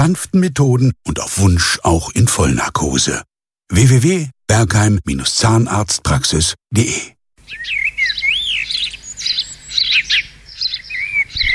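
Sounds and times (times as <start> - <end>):
speech: 0.0 - 7.8
several birds chirping and twittering with whistled calls and trills: 7.4 - 11.5.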